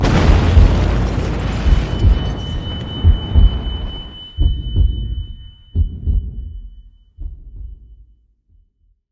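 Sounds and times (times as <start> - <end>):
nuclear explosion impact: 0.0 - 6.8.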